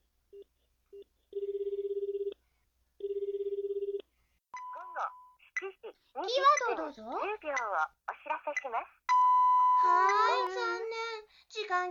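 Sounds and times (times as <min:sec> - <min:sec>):
telephone line ringing for an outgoing call: 0:01.4 - 0:02.3, 0:03.0 - 0:04.0
short telephone beeps: 0:04.6 - 0:05.4, 0:09.1 - 0:09.9
speech: 0:06.8 - 0:09.0, 0:09.8 - 0:11.8.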